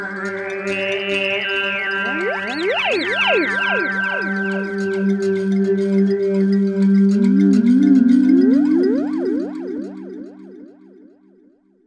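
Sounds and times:
synthesizer playing a factory patch: 0:00.5 - 0:06.0, 0:07.1 - 0:10.8.

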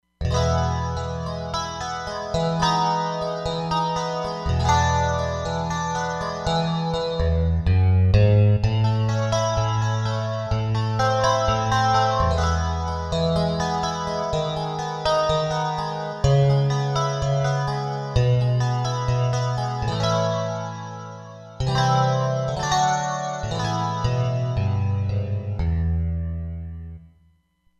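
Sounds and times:
Roland Fantom XR synthesizer: 0:00.2 - 0:26.8
Strat electric guitar: 0:00.2 - 0:27.0.

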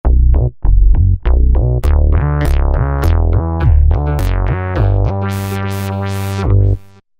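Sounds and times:
Roland V-Synth vocal and bass factory patch: 0:00.0 - 0:07.1.

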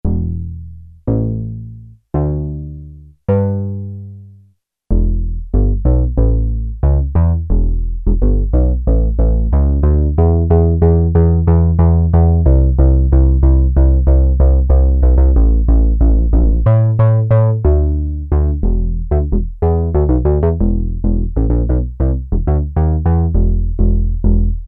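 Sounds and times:
Sequential Circuits Prophet-5 bass guitar unison factory patch: 0:00.0 - 0:04.1, 0:04.9 - 0:24.6.

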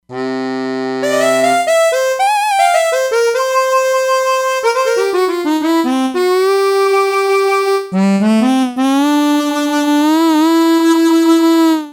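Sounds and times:
E-mu Proteus-3 factory mod harmonica patch: 0:00.1 - 0:11.9.

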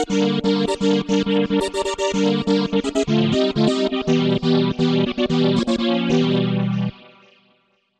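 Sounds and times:
synthesizer factory patches: 0:00.2 - 0:06.9.

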